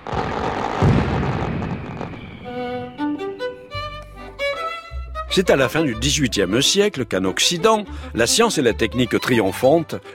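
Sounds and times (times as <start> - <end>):
loud firework burst with a deep boom and crackling hissing roar: 0.0 - 3.2
melodic music passage: 2.5 - 10.1
speech: 5.3 - 10.1.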